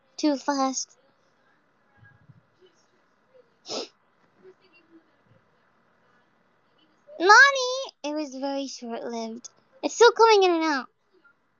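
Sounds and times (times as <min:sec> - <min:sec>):
speech: 0:00.2 - 0:01.0, 0:07.2 - 0:10.9
stifled sneeze: 0:03.7 - 0:03.9.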